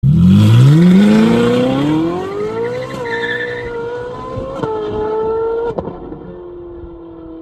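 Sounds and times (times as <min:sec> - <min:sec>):
Ferrari 458 engine: 0:00.0 - 0:07.4.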